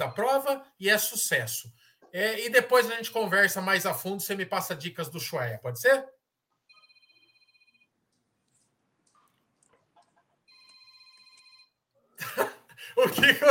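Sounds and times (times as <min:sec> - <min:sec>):
speech: 0:00.0 - 0:06.2, 0:13.0 - 0:13.4
telephone ringing with electronic trill: 0:06.6 - 0:08.0, 0:10.5 - 0:11.9
laughter: 0:12.2 - 0:13.4.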